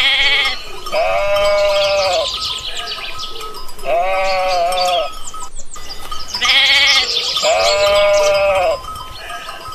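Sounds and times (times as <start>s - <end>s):
goats bleating in a shepherd's older milking herd near Forja: 0.0s - 2.9s, 3.8s - 5.2s, 6.4s - 9.6s.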